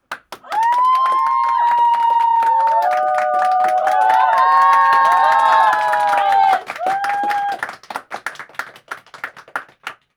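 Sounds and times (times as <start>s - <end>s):
small group applause: 0.0s - 10.1s
small group cheering: 0.4s - 7.9s.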